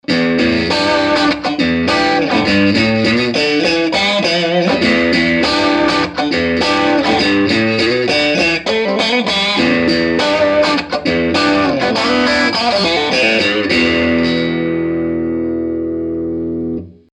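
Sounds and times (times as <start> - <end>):
Strat electric guitar with crunch tone on middle and bridge pickups: 0.0 - 17.1.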